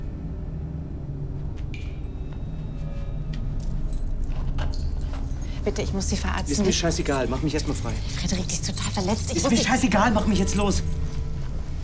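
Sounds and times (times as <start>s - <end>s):
low vehicle engine rumble: 0.0s - 11.8s
metal keys jangling: 3.2s - 11.4s
speech: 5.7s - 11.0s.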